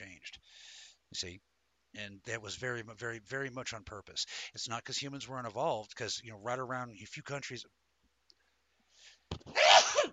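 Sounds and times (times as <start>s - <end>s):
speech: 1.1s - 7.8s
person sneezing: 9.5s - 10.1s.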